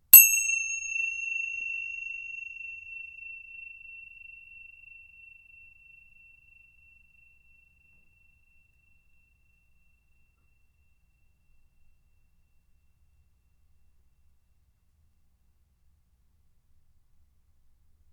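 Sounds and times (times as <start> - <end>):
tingsha cymbals ringing: 0.0 - 11.0.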